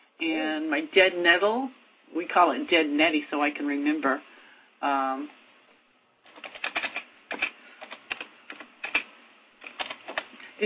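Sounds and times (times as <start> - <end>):
speech: 0.2 - 5.4
computer keyboard typing: 6.3 - 10.4.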